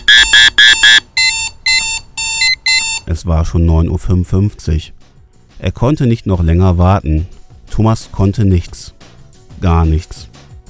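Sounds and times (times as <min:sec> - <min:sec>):
digital watch alarm with rapid double beeps and shrill tones: 0:00.0 - 0:03.1
speech: 0:03.1 - 0:05.0, 0:05.6 - 0:09.0, 0:09.6 - 0:10.3.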